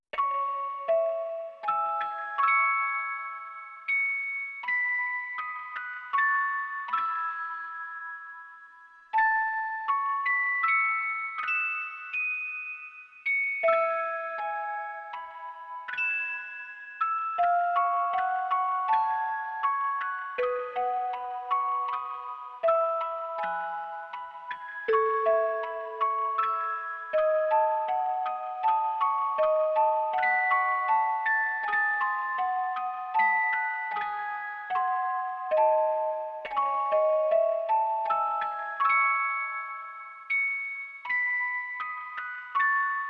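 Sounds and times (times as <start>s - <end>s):
lo-fi music box: 0.1s - 43.0s.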